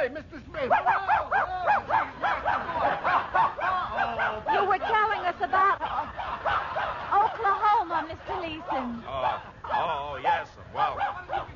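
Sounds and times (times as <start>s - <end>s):
speech: 0.0s - 2.2s
small dog barking and yipping: 0.6s - 7.4s, 8.6s - 11.5s
laughter: 1.7s - 11.5s.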